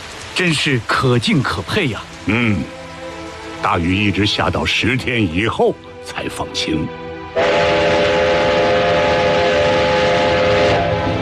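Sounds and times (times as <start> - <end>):
speech: 0.4 - 2.8, 3.6 - 7.7
train carrying crates running on railway tracks: 7.4 - 11.2.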